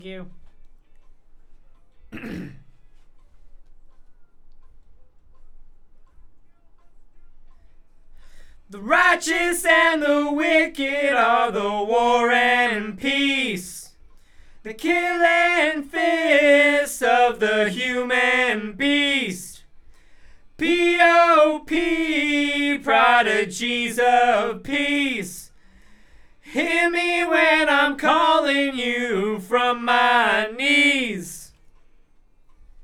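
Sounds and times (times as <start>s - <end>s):
background vocals: 8.2s - 31.6s.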